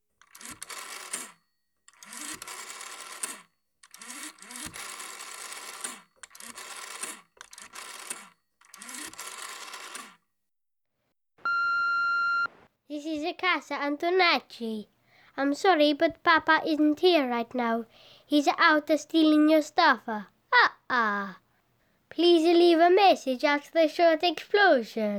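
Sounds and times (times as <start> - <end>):
emergency telephone number dialing: 0.2 - 10.2
steady electronic tone: 11.5 - 12.6
speech: 13.0 - 21.4, 22.1 - 25.1.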